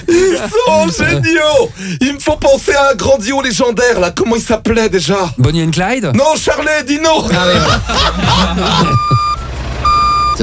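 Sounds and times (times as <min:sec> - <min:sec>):
laughter: 0:00.0 - 0:01.6, 0:07.2 - 0:09.4
speech: 0:00.0 - 0:09.2
electronic ankle monitor bracelet beeping: 0:08.8 - 0:10.4.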